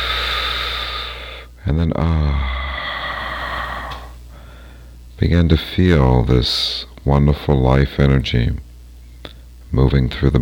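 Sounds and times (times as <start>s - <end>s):
deep breath in: 0.0s - 1.5s, 2.4s - 5.0s
speech: 1.7s - 2.6s, 5.2s - 8.7s, 9.7s - 10.4s.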